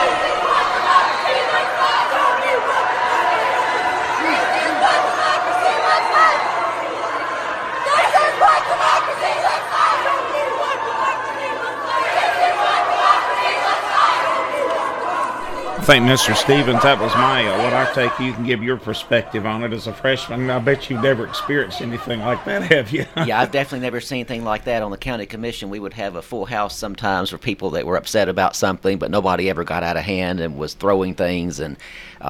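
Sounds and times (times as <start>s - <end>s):
large crowd of protesters chanting and shouting inside a state capitol: 0.0s - 24.0s
laughter: 15.4s - 24.0s
speech: 15.9s - 32.2s.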